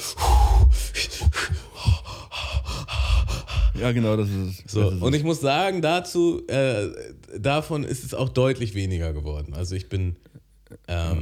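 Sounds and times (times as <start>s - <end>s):
deep gasping breaths: 0.0s - 4.6s
speech: 3.8s - 11.2s.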